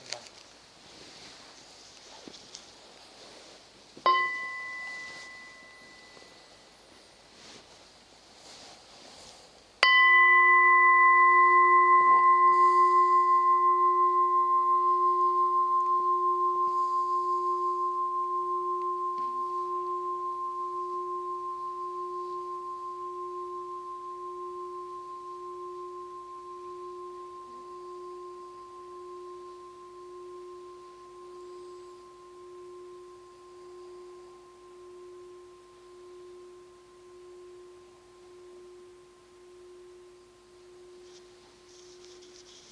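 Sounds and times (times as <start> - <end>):
bell strike ringing as an invitation to practice: 4.1 - 6.8, 9.8 - 23.7.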